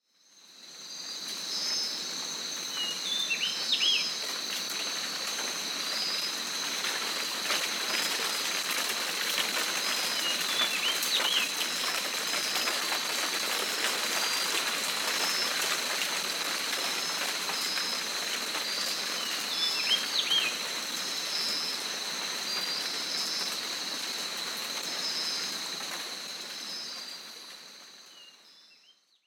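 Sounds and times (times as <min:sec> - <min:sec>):
tropical island rain: 0:00.0 - 0:28.9.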